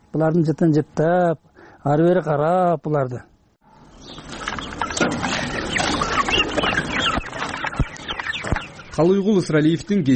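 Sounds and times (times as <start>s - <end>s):
speech: 0.1s - 3.3s, 9.0s - 10.1s
chickens clucking at a home: 3.7s - 10.1s.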